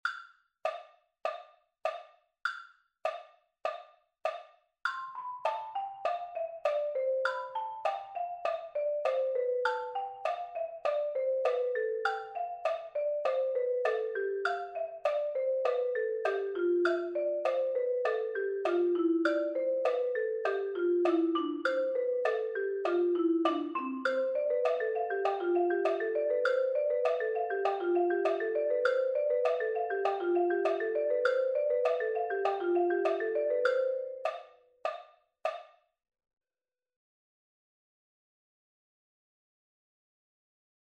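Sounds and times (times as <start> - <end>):
triple beat mallets at 100 bpm: 3.1 - 35.6.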